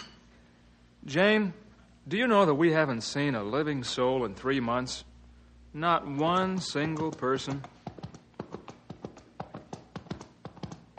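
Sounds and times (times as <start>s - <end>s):
speech: 1.0s - 5.1s, 5.7s - 7.8s
horse hooves clip-clopping: 6.3s - 10.9s.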